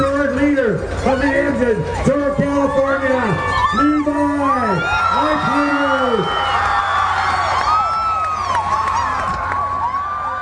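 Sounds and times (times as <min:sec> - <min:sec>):
speech: 0:01.0 - 0:02.8
crowd cheering for cycling race leader: 0:01.0 - 0:10.3
applause: 0:05.6 - 0:10.3.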